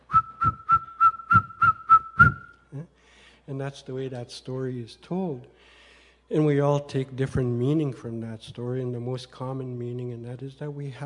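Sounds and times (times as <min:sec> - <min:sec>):
eagle bone whistle blasts: 0:00.0 - 0:02.6
speech: 0:03.5 - 0:11.0.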